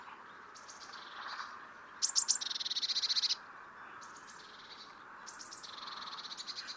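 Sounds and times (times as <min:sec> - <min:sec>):
Eurasian blue tit Cyanistes caeruleus tsee calls and buzzy churring: 0:00.6 - 0:03.4, 0:04.0 - 0:06.7.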